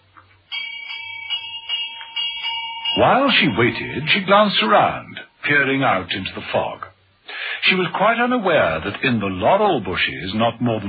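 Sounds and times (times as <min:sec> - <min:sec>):
doorbell chiming at the front door of a large country house: 0:00.5 - 0:05.3
speech: 0:03.0 - 0:06.8, 0:07.6 - 0:10.8.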